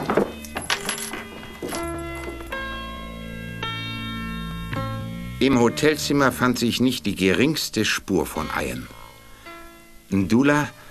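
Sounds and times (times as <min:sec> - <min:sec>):
hotel room keys jingling and clinking as handed over: 0:00.0 - 0:02.7
speech: 0:05.4 - 0:09.0, 0:10.1 - 0:10.8.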